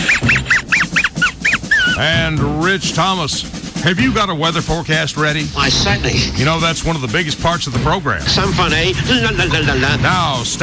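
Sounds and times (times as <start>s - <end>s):
voice imitating chicken clucking squawks: 0.0s - 2.2s
laughter: 0.0s - 2.4s, 8.3s - 10.5s
speech: 2.0s - 10.6s.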